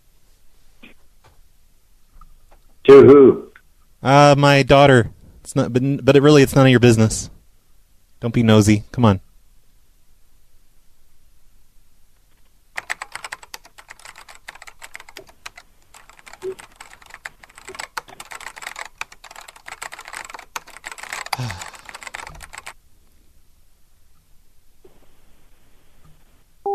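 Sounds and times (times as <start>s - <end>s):
speech: 2.9s - 7.4s, 8.2s - 9.3s
typing an email on a computer keyboard: 12.8s - 22.8s.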